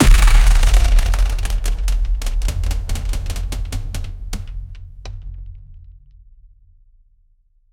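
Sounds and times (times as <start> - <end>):
frenzied overlapping drums: 0.0 - 6.2.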